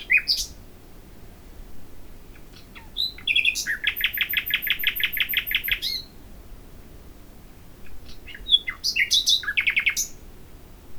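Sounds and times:
common nightingale Luscinia megarhynchos singing: 0.0s - 0.6s, 2.4s - 6.1s, 8.1s - 10.2s.

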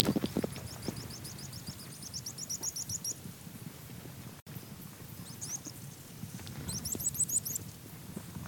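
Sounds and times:
rock earthcreeper Ochetorhynchus andaecola calls: 0.0s - 3.2s, 4.6s - 7.7s.

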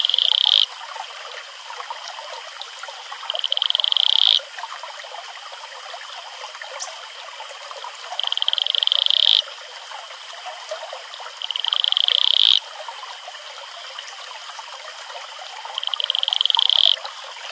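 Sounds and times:
male Atelopus franciscus advertisement call pulsed trill: 0.0s - 0.7s, 3.3s - 4.4s, 8.2s - 9.4s, 11.4s - 12.6s, 15.8s - 17.0s
trickling water: 0.0s - 17.5s.

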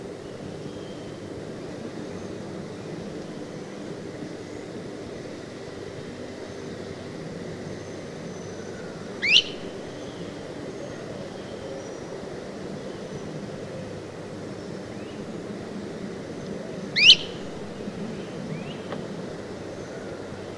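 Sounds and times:
low background hum: 0.0s - 20.5s
great crested flycatcher rising whistled call: 9.2s - 9.6s, 17.0s - 17.4s.

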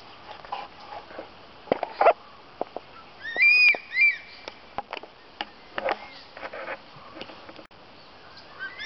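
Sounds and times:
crested serpent eagle whistling ringing down-curving notes at Dhoni: 3.2s - 4.4s.

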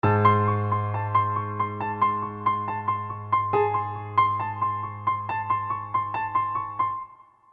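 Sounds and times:
suspenseful piano music: 0.0s - 7.5s.

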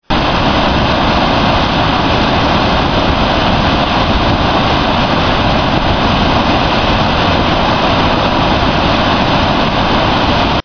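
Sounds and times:
Gullfoss waterfall: 0.0s - 10.6s.

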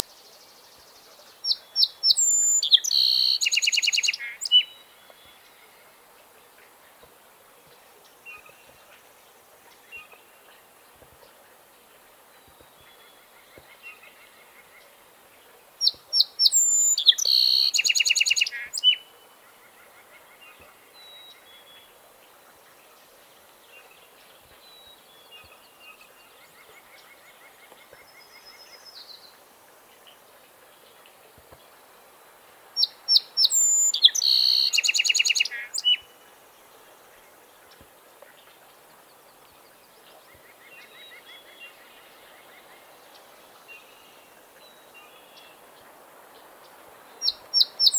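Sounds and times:
Melospiza melodia song sparrow singing: 1.5s - 4.7s, 15.8s - 19.0s, 32.8s - 36.0s, 47.2s - 47.9s.

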